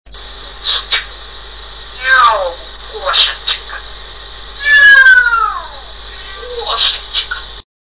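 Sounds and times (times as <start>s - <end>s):
parrot imitating a cat: 2.0s - 3.8s, 4.6s - 7.4s.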